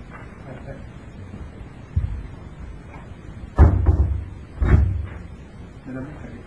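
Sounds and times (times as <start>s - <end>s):
heavy door slamming: 3.5s - 5.3s.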